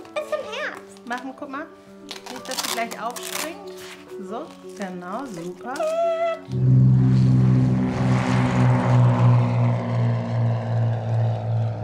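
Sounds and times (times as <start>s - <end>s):
speech: 0.7s - 6.8s
small propeller plane engine droning in flight: 6.4s - 11.8s.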